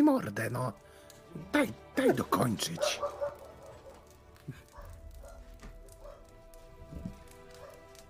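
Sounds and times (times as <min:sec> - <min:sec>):
speech: 0:00.0 - 0:03.4
dog barking and yapping: 0:02.8 - 0:04.1, 0:04.7 - 0:06.4, 0:07.5 - 0:08.0.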